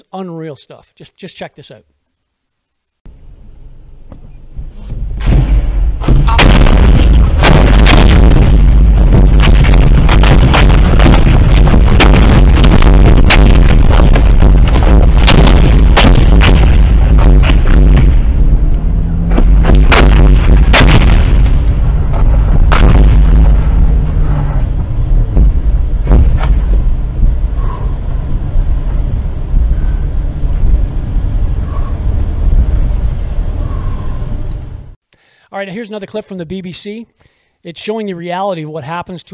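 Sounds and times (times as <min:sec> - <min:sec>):
speech: 0:00.0 - 0:02.0, 0:35.6 - 0:39.3
constant loud roar: 0:03.2 - 0:35.0
incoming mortar fire exploding around a car on a highway: 0:05.0 - 0:34.0.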